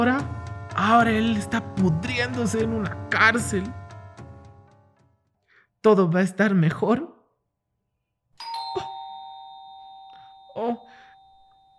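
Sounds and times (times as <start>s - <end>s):
speech: 0.0s - 3.8s, 5.8s - 7.1s, 10.6s - 10.8s
doorbell chiming ding-dong: 8.4s - 11.7s.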